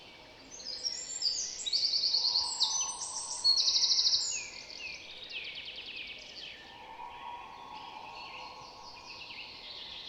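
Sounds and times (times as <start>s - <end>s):
Eurasian wren Troglodytes troglodytes song: 0.1s - 5.3s, 6.1s - 10.0s
faint high twittering: 1.7s - 5.1s, 6.5s - 10.0s.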